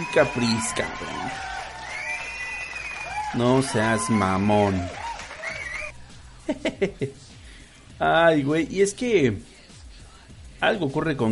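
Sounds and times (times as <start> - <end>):
speech: 0.0 - 1.5, 3.3 - 5.0, 6.5 - 7.3, 8.0 - 9.5, 10.6 - 11.3
cheering voices and drawn-out whoops: 0.0 - 5.9
crowd applause: 0.0 - 5.9
laughter: 6.4 - 7.2.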